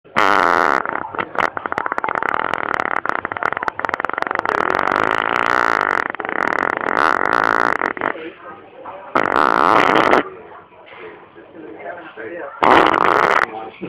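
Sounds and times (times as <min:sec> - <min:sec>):
fart: 0:00.1 - 0:08.4, 0:09.1 - 0:10.3, 0:12.6 - 0:13.6.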